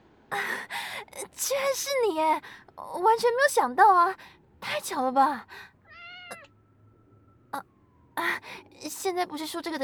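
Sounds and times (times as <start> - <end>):
speech: 1.4 - 5.7, 7.5 - 9.8
kitten found on a road meowing: 5.9 - 6.5.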